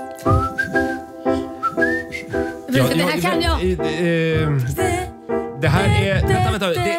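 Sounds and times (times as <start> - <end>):
person whistling a pop tune: 0.2 - 2.9, 4.4 - 5.0
speech: 2.9 - 5.0, 5.6 - 6.9.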